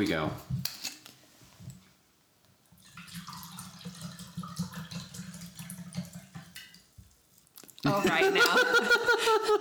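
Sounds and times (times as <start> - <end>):
speech: 0.0 - 0.5, 7.9 - 9.6
Moscato wine pouring into a glass: 2.8 - 7.8
laughter: 7.8 - 9.6.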